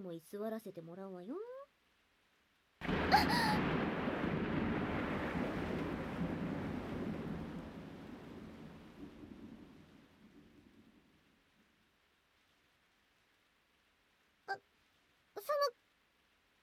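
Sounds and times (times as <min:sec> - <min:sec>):
speech: 0:00.0 - 0:01.6, 0:02.8 - 0:04.0
thunder clap rolling into rumble: 0:02.8 - 0:11.1.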